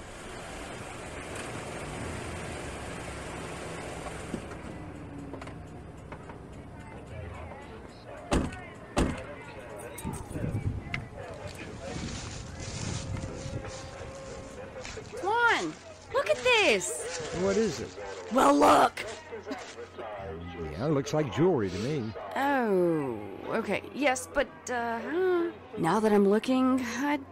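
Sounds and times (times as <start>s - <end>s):
car engine humming as the car is parked at a fairground: 0.0s - 22.0s
faint outdoor ambience at a fairground: 0.0s - 27.3s
crunchy footsteps: 11.1s - 20.2s
speech: 16.7s - 19.0s, 20.8s - 27.3s.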